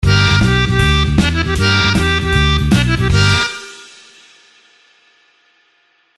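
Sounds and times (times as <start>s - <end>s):
blues harp harmonica sample: 0.0s - 4.2s.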